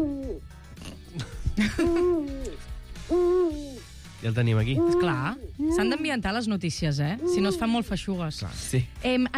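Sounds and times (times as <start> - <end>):
owl hooting: 0.0 - 0.4, 1.8 - 3.9, 4.6 - 6.2, 7.0 - 8.0
speech: 1.6 - 2.4, 4.2 - 9.3.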